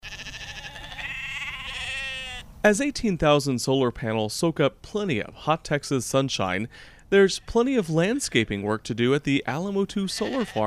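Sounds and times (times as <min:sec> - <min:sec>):
sheep bleating at a solar farm: 0:00.0 - 0:02.5, 0:10.0 - 0:10.6
speech: 0:02.6 - 0:10.6.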